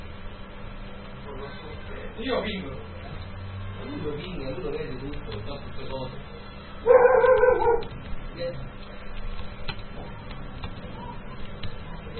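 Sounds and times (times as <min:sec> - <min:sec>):
speech: 0:02.2 - 0:03.0, 0:03.8 - 0:08.8
dog yelping bark: 0:06.8 - 0:07.9.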